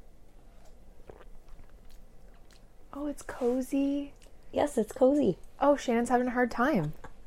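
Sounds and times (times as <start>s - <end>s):
soft slurps and mouth noises: 0.2s - 5.6s
sipping warm tea from a travel paper cup: 0.4s - 2.7s
speech: 3.0s - 7.0s.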